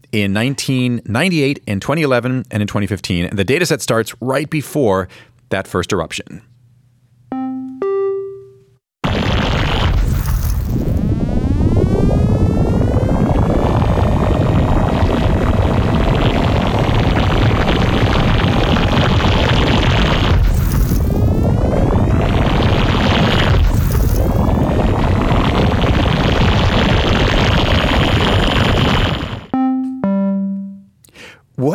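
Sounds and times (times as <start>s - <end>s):
speech: 0.1s - 6.5s
short synthetic beeps: 7.3s - 8.7s, 29.5s - 30.9s
sonified volcano data as continuous electronic sweeping tones: 7.3s - 30.9s
loud booms marking volcanic eruptions: 9.0s - 29.5s.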